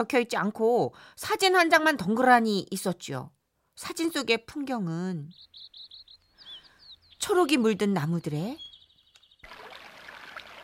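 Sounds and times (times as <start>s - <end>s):
speech: 0.0s - 6.0s, 7.2s - 8.6s
babbling stream trickling: 9.1s - 10.6s.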